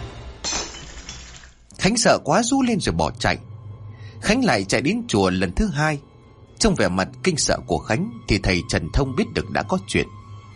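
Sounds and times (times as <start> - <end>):
flower vase and incense bowl shattering on a brick floor: 0.4 - 1.7
fragments clinking: 0.4 - 1.7
speech: 1.9 - 3.5, 4.2 - 6.1, 6.6 - 10.2.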